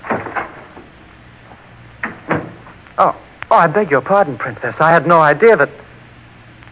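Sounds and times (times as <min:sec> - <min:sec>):
door rattling knocks as it swings: 0:00.0 - 0:01.0, 0:02.0 - 0:02.8
wooden door clunks: 0:00.0 - 0:01.0, 0:02.0 - 0:02.8
door being opened: 0:00.0 - 0:02.8
speech: 0:03.0 - 0:05.8.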